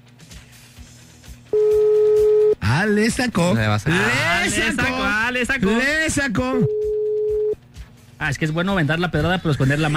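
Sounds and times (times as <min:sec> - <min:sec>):
WhatsApp outgoing call ringing tone: 0:01.5 - 0:02.6, 0:06.6 - 0:07.6
speech: 0:02.8 - 0:06.8, 0:08.2 - 0:09.9.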